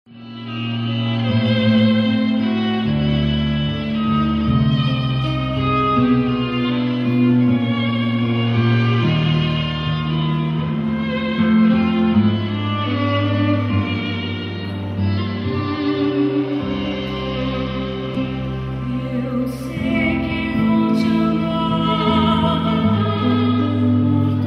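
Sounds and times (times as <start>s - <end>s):
orchestra playing: 0.1s - 24.4s
soprano singing: 0.2s - 24.4s
tenor singing: 16.0s - 24.4s.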